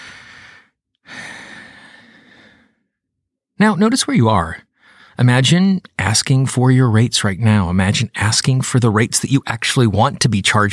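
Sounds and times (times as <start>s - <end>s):
deep breath: 0.0s - 3.0s, 4.7s - 5.2s
speech: 3.6s - 10.7s.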